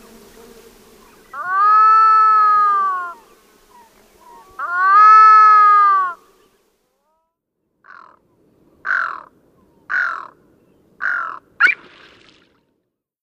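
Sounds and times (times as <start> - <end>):
Pacific loon wailing: 1.4 - 3.3, 4.2 - 6.2.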